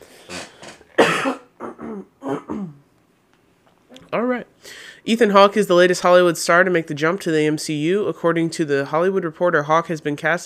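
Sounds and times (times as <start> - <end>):
throat clearing: 0.3 - 2.8
coughing: 0.3 - 2.9
speech: 5.0 - 10.4.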